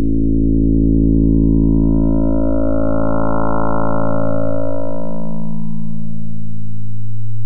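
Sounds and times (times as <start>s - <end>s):
two-note test tone: 0.0s - 6.4s.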